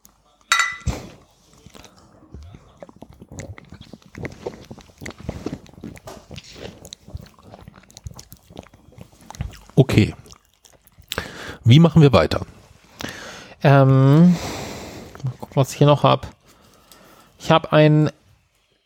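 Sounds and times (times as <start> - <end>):
soft drinking and mouth sounds: 0.0 - 17.6
glasses of malt beer clinking in a toast: 0.5 - 0.9
speech: 10.0 - 10.2, 11.7 - 12.5, 13.6 - 14.5, 15.6 - 16.4, 17.5 - 18.2.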